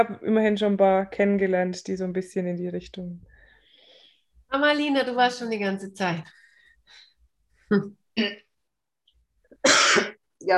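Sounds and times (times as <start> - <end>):
speech: 0.0 - 3.3, 4.5 - 7.1, 7.7 - 8.4, 9.6 - 10.5
person coughing harshly: 9.6 - 10.2.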